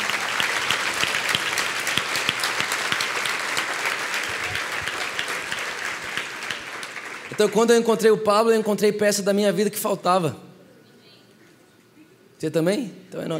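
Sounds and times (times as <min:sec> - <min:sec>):
sustained applause from a large audience: 0:00.0 - 0:07.9
speech: 0:07.4 - 0:10.5, 0:12.4 - 0:13.3.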